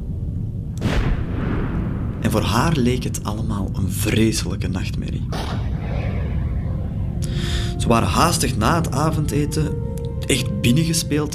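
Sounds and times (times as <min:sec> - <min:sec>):
low rumbling background: 0:00.0 - 0:11.3
single heavy cannon blast: 0:00.8 - 0:02.2, 0:05.3 - 0:07.9
speech: 0:02.2 - 0:05.8, 0:07.8 - 0:11.3.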